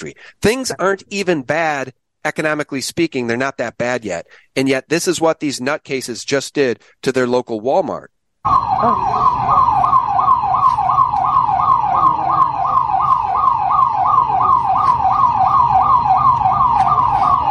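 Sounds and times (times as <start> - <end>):
speech: 0.0 - 9.6
emergency vehicle siren in a rising-and-falling yelp: 8.4 - 17.4
low traffic rumble: 8.5 - 17.4.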